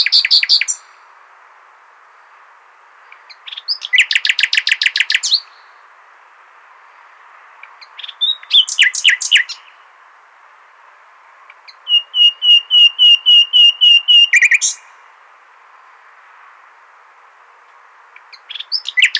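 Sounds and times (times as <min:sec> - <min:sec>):
common nightingale singing, Luscinia megarhynchos: 0:03.0 - 0:05.7, 0:07.0 - 0:09.8, 0:11.6 - 0:15.0, 0:18.2 - 0:19.1.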